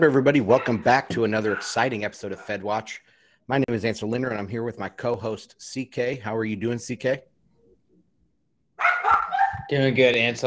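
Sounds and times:
speech: 0.0s - 7.3s, 9.6s - 10.4s
dog barking: 8.8s - 9.7s.

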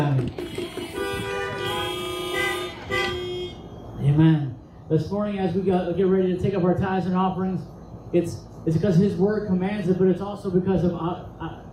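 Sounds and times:
faint noise: 0.0s - 11.7s
several car horns honking: 0.3s - 4.1s
speech: 4.9s - 11.6s.

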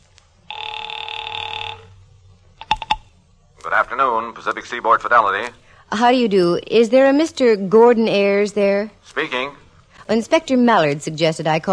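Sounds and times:
rotary telephone bell ringing: 0.5s - 2.0s
speech: 3.9s - 11.7s.

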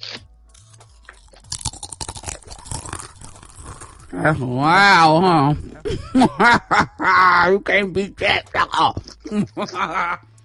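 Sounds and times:
crisp snack being bitten and chewed: 0.0s - 4.5s
speech: 4.2s - 10.3s
laughter: 5.2s - 10.2s.

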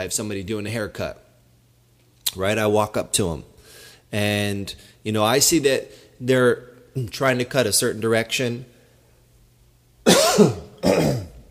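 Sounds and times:
speech: 0.0s - 1.2s, 2.3s - 3.5s, 4.1s - 8.7s, 10.0s - 11.2s
throat clearing: 10.1s - 11.4s.

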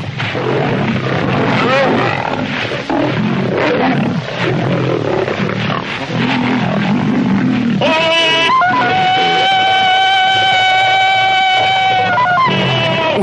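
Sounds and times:
lion roaring and snarling while attacking a man: 0.0s - 13.2s
long sustained tonal cry: 7.7s - 13.2s.

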